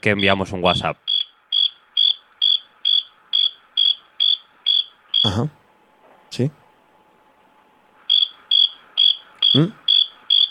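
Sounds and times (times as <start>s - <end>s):
speech: 0.0s - 1.1s, 5.2s - 5.6s, 6.3s - 6.6s, 9.5s - 9.8s
cricket chirping: 1.1s - 5.4s, 8.1s - 10.5s.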